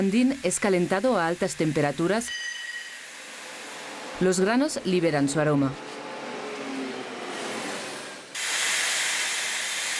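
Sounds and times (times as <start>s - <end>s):
speech: 0.0s - 2.5s, 4.2s - 5.9s
steam hissing from lavandin pressure vats at a lavender distillery: 0.0s - 4.8s, 7.4s - 9.9s.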